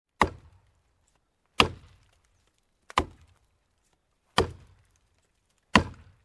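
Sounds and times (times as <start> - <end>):
chopping wood: 0.1 - 0.8, 1.5 - 3.5, 4.3 - 6.2.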